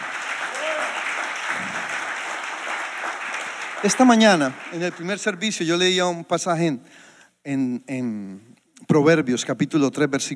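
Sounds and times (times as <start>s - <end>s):
crowd clapping: 0.0s - 5.9s
faint voices and cheers: 0.4s - 1.1s
speech: 3.8s - 10.3s.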